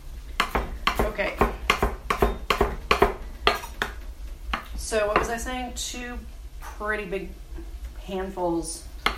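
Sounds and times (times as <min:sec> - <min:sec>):
knife chopping fresh herbs on a cutting board: 0:00.4 - 0:05.3
speech: 0:01.1 - 0:01.5, 0:04.9 - 0:08.9.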